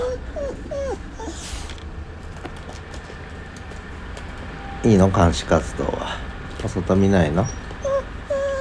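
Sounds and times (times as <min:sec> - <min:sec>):
dog whimpering, begging for breakfast: 0:00.0 - 0:01.7, 0:06.9 - 0:08.5
low hum: 0:00.0 - 0:08.5
speech: 0:04.8 - 0:07.6.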